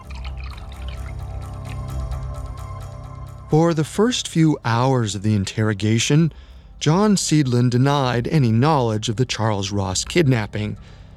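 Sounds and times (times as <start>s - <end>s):
water poured steadily into a glass: 0.0s - 2.6s
speech: 3.5s - 11.0s.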